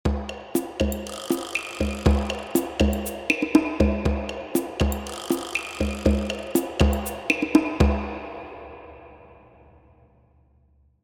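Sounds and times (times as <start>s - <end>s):
drum loop in a racquetball court: 0.0s - 8.4s.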